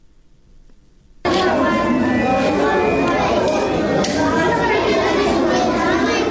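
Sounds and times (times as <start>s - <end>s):
babble of children's voices in a newly built library: 1.3s - 6.2s.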